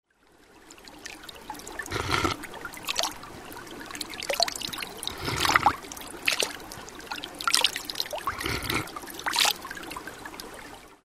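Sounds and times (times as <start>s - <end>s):
bubbling stream water: 0.2s - 11.0s.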